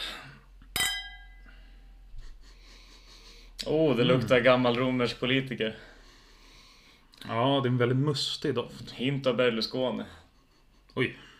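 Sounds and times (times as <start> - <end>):
glasses clinking in a toast: 0.8 - 1.5
faint breathing: 1.4 - 3.6, 5.7 - 7.2, 10.1 - 11.3
speech: 3.6 - 6.0, 7.3 - 10.2, 11.0 - 11.3.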